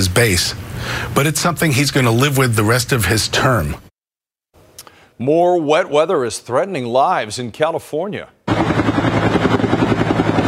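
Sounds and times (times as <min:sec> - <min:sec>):
speech: 0:00.0 - 0:03.9, 0:05.2 - 0:09.0
low helicopter engine drone: 0:08.5 - 0:10.4
rescue helicopter rotor thumping during heavy rains: 0:08.5 - 0:10.4.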